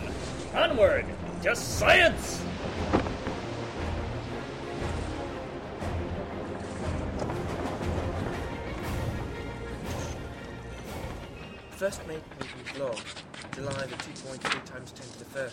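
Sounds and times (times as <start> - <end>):
surging waves at sea: 0.0 - 11.4
wind picking up at sea: 0.0 - 15.5
speech: 0.6 - 3.0, 11.8 - 15.5
crashing splashes: 2.2 - 8.7.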